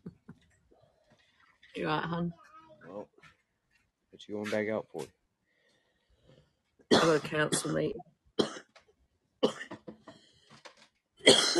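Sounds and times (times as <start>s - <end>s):
speech: 1.8s - 3.1s, 4.2s - 5.2s, 6.9s - 8.1s
person coughing in sharp harsh bursts: 6.9s - 8.7s, 9.4s - 9.9s, 11.2s - 11.5s.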